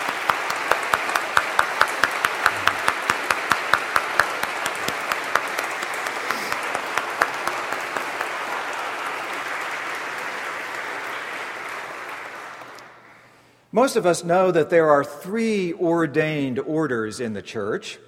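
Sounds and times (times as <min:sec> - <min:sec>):
audience applause: 0:00.0 - 0:13.1
speech: 0:13.8 - 0:18.0.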